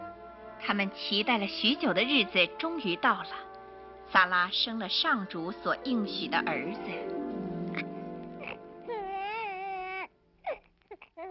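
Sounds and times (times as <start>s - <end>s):
speech: 0.7s - 3.5s, 4.1s - 7.1s
newborn baby boy crying loudly: 7.7s - 11.2s.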